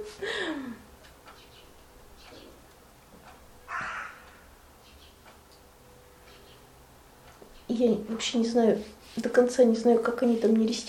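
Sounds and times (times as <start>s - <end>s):
crow cawing: 3.7s - 4.6s
speech: 7.8s - 10.8s.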